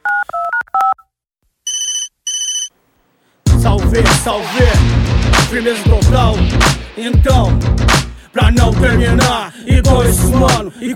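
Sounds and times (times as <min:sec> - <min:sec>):
telephone dial tones on an outgoing call: 0:00.0 - 0:01.1, 0:01.7 - 0:02.7
telephone electronic ringback tones on an outgoing call: 0:01.7 - 0:02.7
speech: 0:03.9 - 0:10.9.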